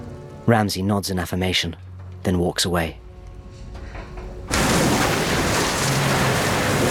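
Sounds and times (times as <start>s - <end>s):
speech: 0.5s - 3.0s
water gushing into a ship's ballast tank: 4.5s - 6.9s.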